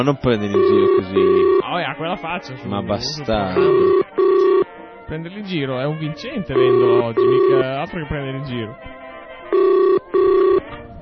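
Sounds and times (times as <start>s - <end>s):
speech: 0.0s - 4.2s, 5.1s - 8.9s
ringback tone of an outgoing telephone call: 0.5s - 1.6s, 3.5s - 4.7s, 6.6s - 7.7s, 9.5s - 10.6s.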